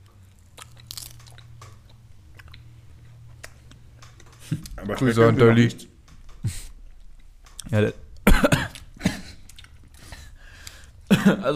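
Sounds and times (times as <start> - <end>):
chewing crunchy beef jerky: 0.2 - 5.1, 8.7 - 10.9
speech: 4.5 - 6.6, 7.7 - 8.0, 11.2 - 11.5
laughter: 9.0 - 9.5.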